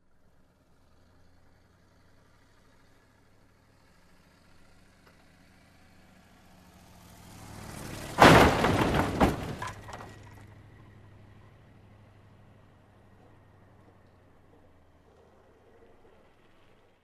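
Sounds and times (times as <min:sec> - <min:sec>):
approaching car crash: 0:04.3 - 0:17.0.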